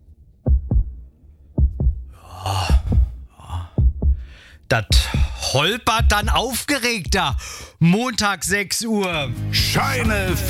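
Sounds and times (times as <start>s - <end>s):
steady relaxed heartbeat thumping: 0.4s - 7.6s
speech: 4.7s - 10.4s.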